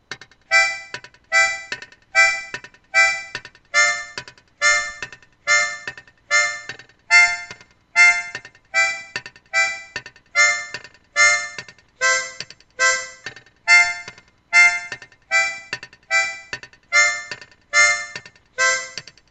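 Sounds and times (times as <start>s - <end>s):
complete reggae rhythm with harmonica: 0.0s - 19.3s.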